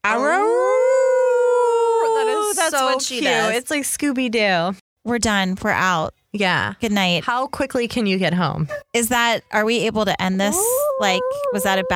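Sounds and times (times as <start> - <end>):
dog howling: 0.0 - 2.4, 10.5 - 11.9
speech: 2.7 - 11.9.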